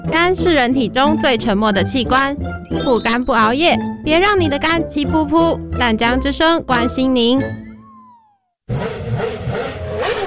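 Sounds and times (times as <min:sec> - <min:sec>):
speech: 0:00.2 - 0:07.6
motorcycle engine revving as throttle is opened: 0:08.7 - 0:10.2.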